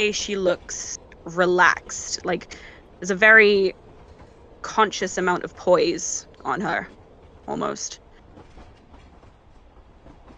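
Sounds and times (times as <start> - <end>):
speech: 0.0 - 3.8, 4.6 - 8.0
train heading to Beijing rumbling along rails: 0.0 - 10.3.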